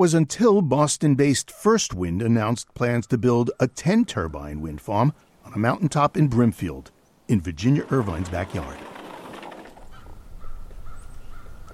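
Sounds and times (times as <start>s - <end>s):
speech: 0.0s - 8.9s
steady outdoor rumble: 6.6s - 10.7s
crows cawing overhead: 9.9s - 11.7s.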